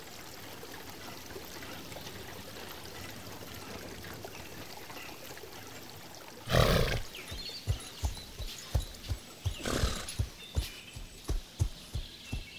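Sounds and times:
purebred horse snorting: 0:06.5 - 0:08.2, 0:08.8 - 0:10.4
purebred horse hooves walking on a farm in the Serra Gaúcha, Brazil: 0:06.5 - 0:12.5.

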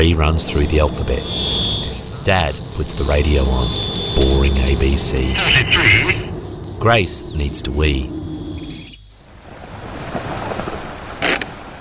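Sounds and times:
speech: 0:00.0 - 0:01.6, 0:02.3 - 0:08.2
ocean waves breaking on shore: 0:09.3 - 0:11.7.

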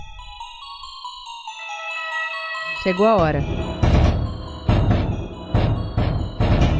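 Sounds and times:
speech: 0:02.8 - 0:03.8
heavy booming drum hits of a drum jingle: 0:03.2 - 0:06.7.

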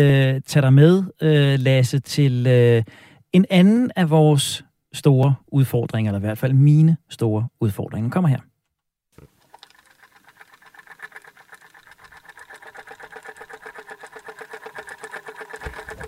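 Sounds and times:
speech: 0:00.0 - 0:08.5
manual alarm clock ticking: 0:09.6 - 0:16.0.

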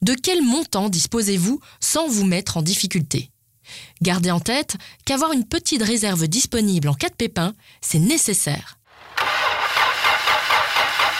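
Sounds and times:
speech: 0:00.0 - 0:09.2
car engine cranking without starting: 0:09.0 - 0:11.1.

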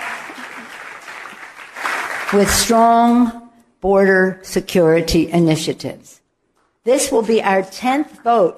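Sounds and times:
crowd applause after a line in a speech: 0:00.0 - 0:02.6
speech: 0:02.3 - 0:06.2, 0:06.8 - 0:08.5.

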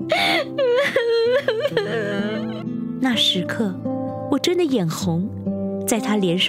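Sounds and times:
person crying: 0:00.0 - 0:02.7
speech: 0:03.0 - 0:06.4.

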